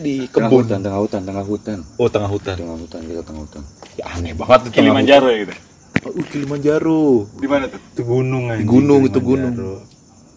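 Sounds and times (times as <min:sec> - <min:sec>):
speech: 0:00.0 - 0:09.9
crickets chirping in a garden: 0:00.0 - 0:10.3.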